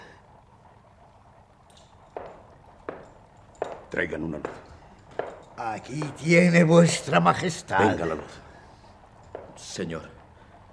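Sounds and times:
hooves of ridden horses clip-clopping on hard ground: 0.6 - 7.4, 9.0 - 10.0
speech: 3.9 - 4.7, 5.6 - 8.4, 9.6 - 10.2.

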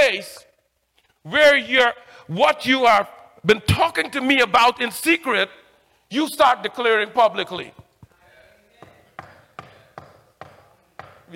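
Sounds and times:
speech: 1.2 - 7.8
sharp knocking: 8.8 - 11.3.

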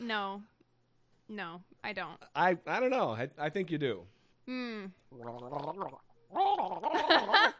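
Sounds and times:
speech: 0.1 - 0.5, 1.3 - 7.5
person gargling with something in the mouth, imitating a phlegmy voice: 5.1 - 7.5.

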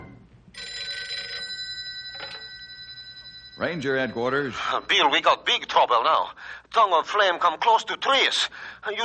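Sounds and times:
field telephone bell ringing: 0.5 - 5.3
speech: 3.7 - 9.0.

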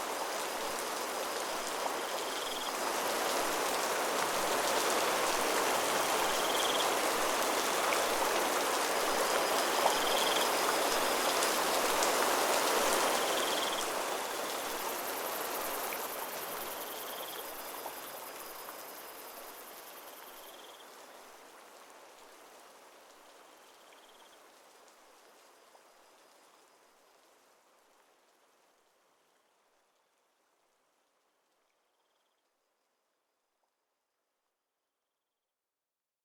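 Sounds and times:
steady rain falling on surfaces: 0.0 - 31.7
crickets chirping: 1.3 - 2.8, 6.0 - 11.8, 12.7 - 20.9.

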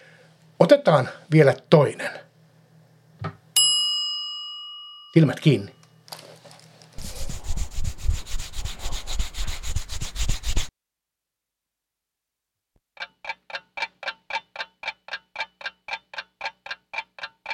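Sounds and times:
speech: 0.6 - 2.2, 5.2 - 5.8
hand rubbing briskly over a bald head: 7.0 - 10.7.

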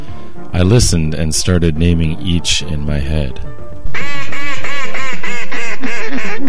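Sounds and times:
speech: 0.6 - 4.2
mallard duck quacking in the fall air: 4.0 - 6.4.

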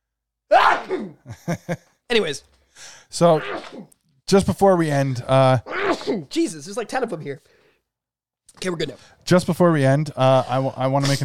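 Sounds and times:
person sneezing: 0.5 - 1.3, 3.3 - 4.0, 5.7 - 6.3
speech: 1.0 - 7.6, 8.6 - 11.2.

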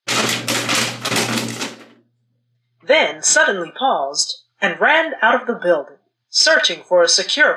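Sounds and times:
typewriter keys clattering: 0.0 - 2.0
speech: 2.9 - 7.5.

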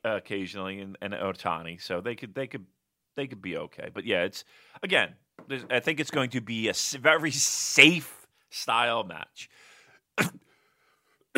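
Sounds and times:
speech: 0.0 - 10.5
person coughing sharply and forcefully: 10.2 - 10.4.

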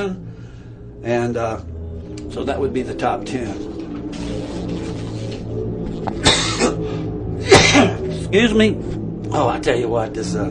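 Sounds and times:
speech: 0.0 - 0.3, 1.0 - 1.7, 2.3 - 4.3, 7.7 - 10.5
harsh coughs in a coughing fit: 6.2 - 6.8, 7.4 - 8.1.

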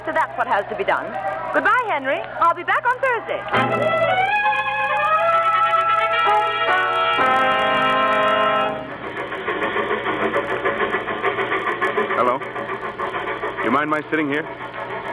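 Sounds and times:
train engine running: 0.0 - 15.1
speech: 0.1 - 4.6, 12.2 - 12.6, 13.7 - 14.7
whistle-like tones: 3.6 - 8.9.

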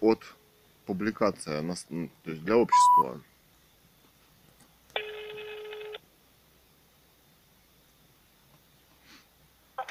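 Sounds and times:
speech: 0.0 - 3.3
telephone ringing as a call is placed: 2.7 - 3.1, 5.0 - 6.0.

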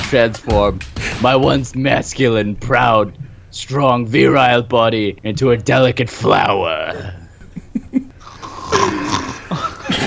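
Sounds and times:
speech: 0.1 - 7.2
laughter: 6.9 - 8.2, 8.8 - 10.0
loud rasping heavy male snoring: 8.2 - 9.6.

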